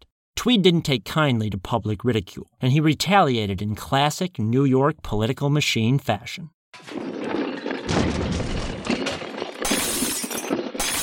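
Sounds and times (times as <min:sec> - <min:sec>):
speech: 0:00.4 - 0:07.0
debris crashing and scattering: 0:06.8 - 0:11.0
sculptures being smashed with sledgehammers: 0:06.8 - 0:11.0.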